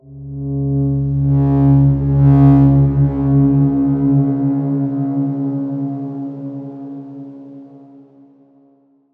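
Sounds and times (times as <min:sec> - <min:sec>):
dark swarm drone note in C sharp: 0:00.0 - 0:08.5.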